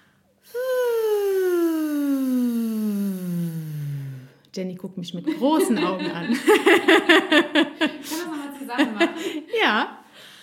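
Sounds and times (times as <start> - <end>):
single voice glissando sliding down on a breathy woo: 0.5 - 4.3
speech: 4.6 - 10.0
laughter: 5.3 - 9.6.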